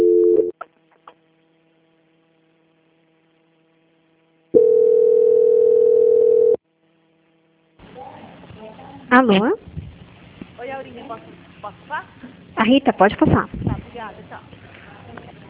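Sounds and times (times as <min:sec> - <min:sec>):
telephone line tone during call transfer: 0:00.0 - 0:00.6, 0:04.6 - 0:06.6
faint continuous hum: 0:00.0 - 0:15.4
speech: 0:09.2 - 0:09.6, 0:11.1 - 0:14.5.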